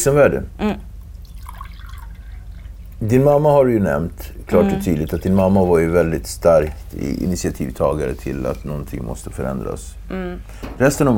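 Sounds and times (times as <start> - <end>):
speech: 0.0 - 0.9, 3.0 - 11.1
low steady hum: 0.0 - 11.1
water pouring into a glass: 1.2 - 3.0, 4.8 - 8.8.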